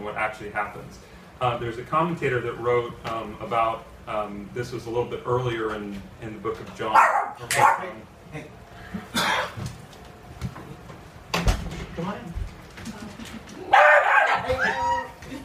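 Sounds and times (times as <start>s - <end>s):
speech: 0.1s - 9.3s
dog barking and yipping: 6.9s - 7.9s, 13.7s - 15.0s.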